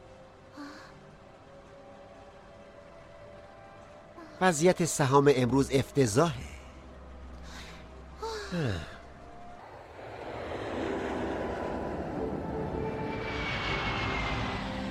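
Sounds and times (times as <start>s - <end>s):
speech: 4.4s - 6.6s, 8.5s - 8.9s
airplane engine roaring during takeoff: 9.6s - 14.8s
descending whistle: 12.2s - 14.8s.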